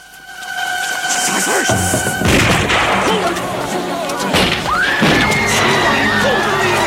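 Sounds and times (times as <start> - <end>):
chaotic din of noise: 0.0 - 6.8
grenades exploding on a scaffold: 1.7 - 5.6.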